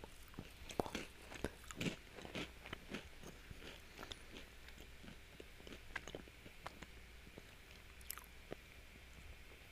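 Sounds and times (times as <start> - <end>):
person chewing crunchy food loudly: 0.0 - 8.6.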